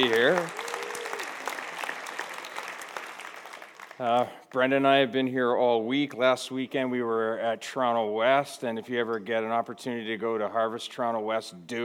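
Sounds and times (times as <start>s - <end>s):
speech: 0.0s - 0.6s, 4.0s - 11.8s
audience clapping: 0.0s - 4.3s.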